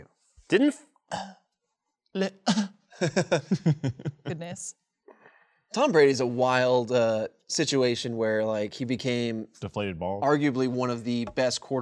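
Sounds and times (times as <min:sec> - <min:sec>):
speech: 0:00.0 - 0:01.4, 0:02.1 - 0:04.8, 0:05.7 - 0:11.8
man coughing: 0:01.1 - 0:01.4, 0:02.5 - 0:03.4
laughter: 0:03.0 - 0:04.6.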